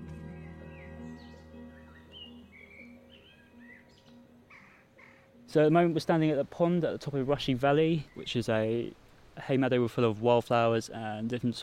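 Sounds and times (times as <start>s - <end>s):
several birds chirping and trilling: 0.0s - 8.9s
speech: 5.5s - 11.6s.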